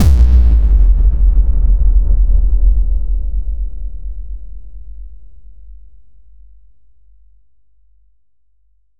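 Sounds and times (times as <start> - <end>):
hard reverberant drop hit: 0.0 - 3.1
boom effects: 0.0 - 3.5
sub bass drops: 0.0 - 4.5.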